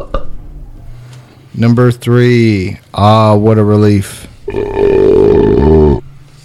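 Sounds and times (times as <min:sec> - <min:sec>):
speech: 0:01.6 - 0:04.7
loud belch made while tasting and rating beers: 0:04.5 - 0:06.0.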